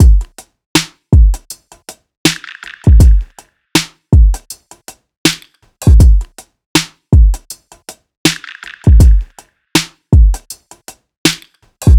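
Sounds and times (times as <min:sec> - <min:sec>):
full drum loop: 0:00.0 - 0:01.6, 0:02.3 - 0:04.6, 0:05.3 - 0:07.6, 0:08.3 - 0:10.6, 0:11.3 - 0:11.9.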